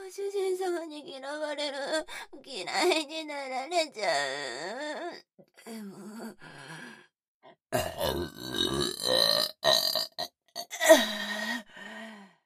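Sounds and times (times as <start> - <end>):
speech: 0.2 - 6.5
long loud drawn-out belch: 7.8 - 10.8.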